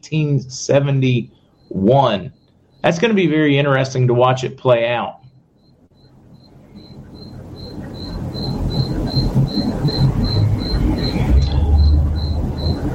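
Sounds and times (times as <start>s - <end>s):
speech: 0.0s - 5.3s
frogs calling outdoors at night: 0.0s - 12.9s
low rumbling hum: 5.8s - 12.9s.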